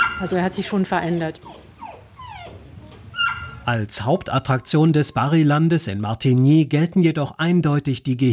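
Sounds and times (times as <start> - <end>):
St. Bernard dog whimpering: 0.0 - 0.6, 1.3 - 3.7
speech: 0.2 - 1.6, 3.7 - 8.3.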